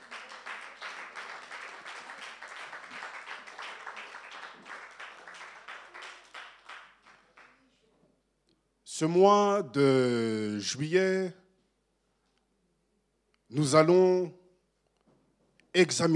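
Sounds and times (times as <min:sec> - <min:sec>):
crowd applauding: 0:00.0 - 0:07.6
speech: 0:09.0 - 0:11.4, 0:13.6 - 0:14.4, 0:15.8 - 0:16.1.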